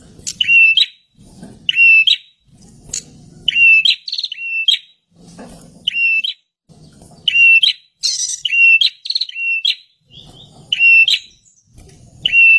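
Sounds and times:
bird calling with short whistled notes: 0.2 - 1.0, 1.7 - 2.4, 3.4 - 5.0, 5.9 - 6.4, 7.2 - 12.5.

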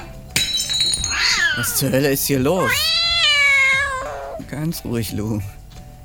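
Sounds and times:
glass crashing: 0.4 - 1.9
glass dishes clinking and rattling as a cat walks among them: 0.4 - 1.9
glass shards tinkling: 0.4 - 1.9
speech: 1.6 - 2.9, 4.5 - 5.6.

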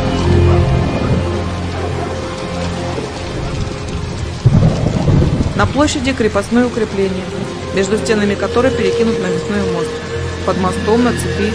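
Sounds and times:
low rolling thunder over a market square: 0.0 - 11.5
steady rain over a market square: 0.0 - 11.5
loud thunder crack over a market square: 2.9 - 7.8
speech: 5.6 - 11.5.

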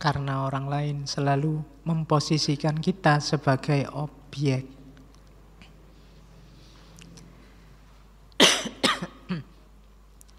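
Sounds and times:
speech: 0.0 - 4.8
person coughing during a philosophy lecture: 8.4 - 9.6.

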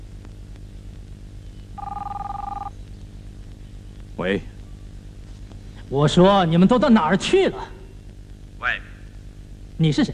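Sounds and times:
electronic telephone ringing: 1.8 - 2.7
speech: 4.2 - 4.5, 5.9 - 7.8, 9.8 - 10.1.

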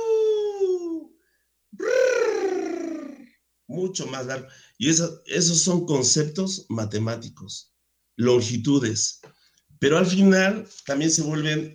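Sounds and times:
human voice imitating a wolf howl: 0.0 - 1.1, 1.8 - 3.3
speech: 3.7 - 11.7.

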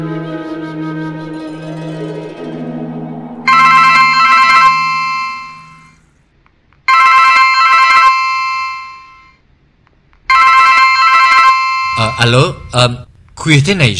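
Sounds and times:
low telephone tone: 1.5 - 6.0, 6.9 - 9.4, 10.3 - 12.8
telephone ringing after a number is dialed: 3.5 - 6.0, 6.9 - 9.4, 10.3 - 12.2
speech: 12.3 - 13.9.

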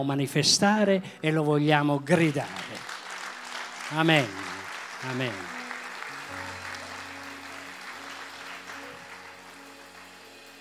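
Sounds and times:
speech: 0.0 - 2.8, 3.9 - 5.6
audience applause at a Sunday church gathering: 2.2 - 10.5.

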